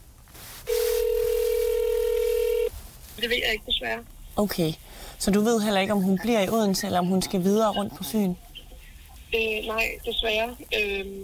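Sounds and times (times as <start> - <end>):
telephone ringback tone: 0.7 - 2.7
speech: 3.2 - 8.4, 9.3 - 11.2.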